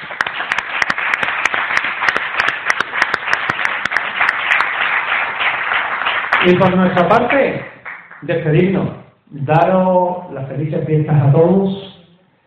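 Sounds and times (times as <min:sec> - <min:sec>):
audience applauding at an awards gala: 0:00.0 - 0:08.3
speech: 0:06.4 - 0:11.9.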